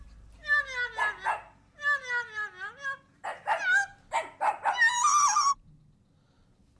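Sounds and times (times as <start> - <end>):
dog barking and yelping: 0.5 - 1.7, 3.2 - 5.6.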